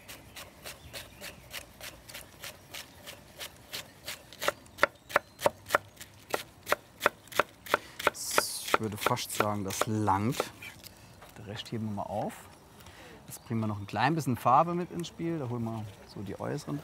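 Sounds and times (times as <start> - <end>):
knife chopping pointed cabbage into thin strips on a board: 0.0 - 10.6
speech: 8.8 - 10.6, 11.5 - 12.5, 13.5 - 16.8.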